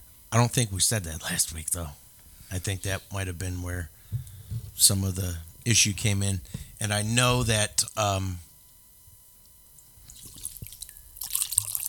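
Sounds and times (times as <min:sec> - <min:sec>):
speech: 0:00.3 - 0:08.5
water being poured to fill a container: 0:10.1 - 0:11.8.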